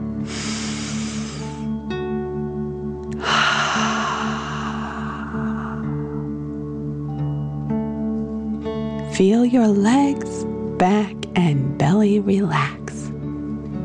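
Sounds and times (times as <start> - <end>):
soft steady musical drone: 0.0 - 10.8
forceful exhale: 0.2 - 1.7, 3.2 - 6.3
long deep inhale through the nose: 0.2 - 1.8, 3.2 - 6.4
speech: 9.2 - 12.8.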